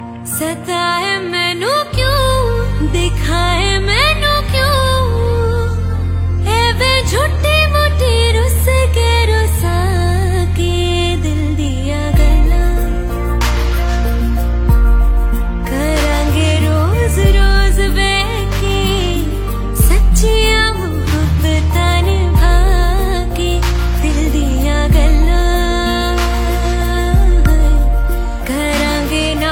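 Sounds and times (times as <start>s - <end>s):
woman singing a romantic Hindi song ringtone: 0.0s - 29.4s.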